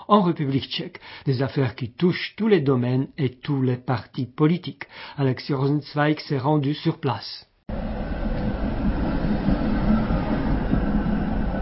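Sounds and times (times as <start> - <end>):
speech: 0.1 - 8.2
tram rumbling on rails at a tram station: 7.7 - 11.5.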